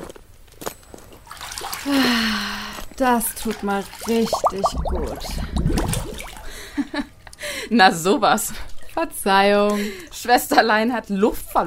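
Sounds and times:
hot water splashing into a wooden tub: 1.0 - 6.7
speech: 1.8 - 2.4, 3.0 - 6.3, 7.7 - 11.6.

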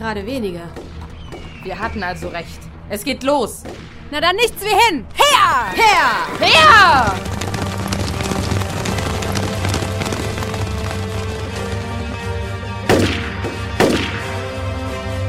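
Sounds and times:
speech: 0.0 - 1.0, 1.6 - 7.3
rhythmic clopping: 6.5 - 12.7
gunshots during a gunfight: 6.7 - 14.4.

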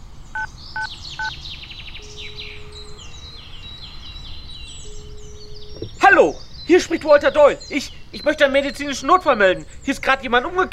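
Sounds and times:
birds chirping and twittering: 0.0 - 10.7
mobile phone keypad dialing beeps: 0.4 - 1.3
speech: 6.1 - 10.7.

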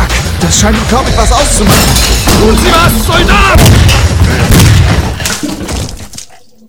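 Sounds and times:
speech: 0.4 - 5.5
sharp follow-up impacts: 1.3 - 5.4
loud gunshot: 3.5 - 5.2.

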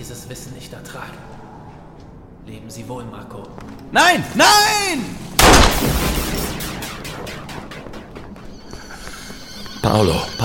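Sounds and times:
speech: 0.0 - 1.5, 2.4 - 6.3, 9.8 - 10.4
gunshot in a dramatic confrontation scene: 5.4 - 8.4.

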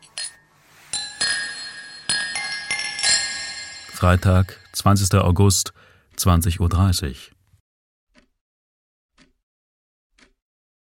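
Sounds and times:
drinking glasses clinking in a toast: 0.0 - 4.8
speech: 4.0 - 7.4.

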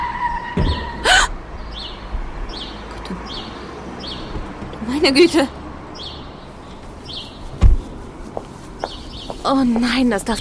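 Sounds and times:
steady squealing tone: 0.0 - 2.9
car striking a dog in the street: 0.6 - 1.4
speech: 5.0 - 5.6, 9.5 - 10.3.

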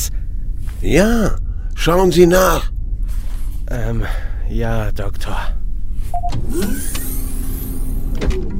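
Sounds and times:
low rumble: 0.0 - 8.5
speech: 0.8 - 2.7, 3.7 - 5.6, 6.2 - 7.0
motorized shuttle door whirring open: 6.2 - 8.5.

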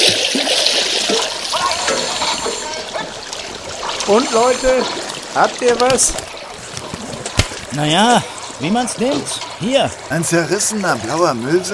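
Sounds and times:
river water rushing and splashing as divers surface: 0.0 - 11.7
speech: 4.1 - 6.3, 7.8 - 11.7.

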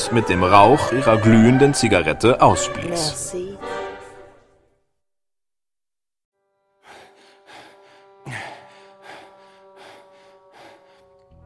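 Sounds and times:
speech: 0.1 - 3.7
heavy rhythmic panting breaths: 6.8 - 11.3.

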